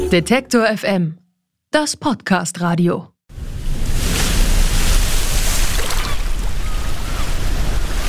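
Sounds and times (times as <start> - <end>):
speech: 0.1 - 3.1
waves slapping against a sailboat hull on open water: 3.4 - 8.0.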